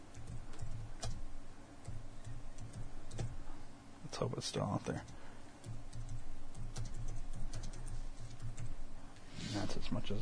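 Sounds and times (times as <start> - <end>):
constant low hum: 0.0 - 10.1
typing on a computer keyboard: 0.1 - 3.4, 5.0 - 8.8
speech: 4.2 - 5.2, 9.8 - 10.1.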